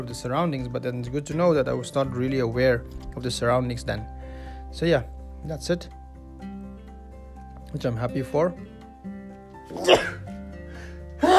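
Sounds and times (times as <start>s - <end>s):
speech: 0.0s - 6.0s, 7.7s - 8.7s, 9.7s - 10.1s
person sneezing: 9.7s - 10.2s.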